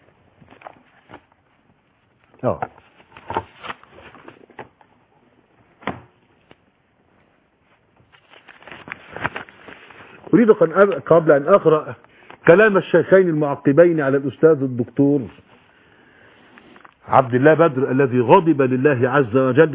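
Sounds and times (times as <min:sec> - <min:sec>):
papers rustling and crinkling while handled and shuffled: 0:00.4 - 0:05.0, 0:07.6 - 0:11.2
speech: 0:02.4 - 0:02.8, 0:10.4 - 0:15.4, 0:17.1 - 0:19.7.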